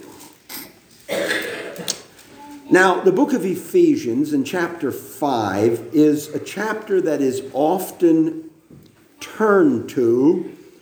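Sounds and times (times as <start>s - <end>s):
throat clearing during a sermon: 0.5s - 2.1s
speech: 2.7s - 8.5s, 9.3s - 10.6s.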